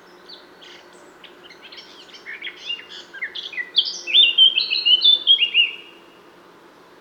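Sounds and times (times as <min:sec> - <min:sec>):
Eurasian blackcap Sylvia atricapilla singing: 0:01.4 - 0:05.9.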